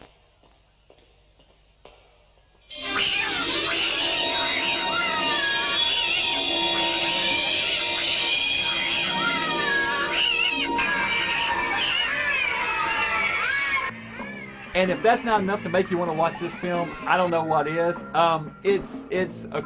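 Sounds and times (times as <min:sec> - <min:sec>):
chorus of many cats meowing and caterwauling: 0:02.8 - 0:17.4
speech: 0:14.8 - 0:19.6.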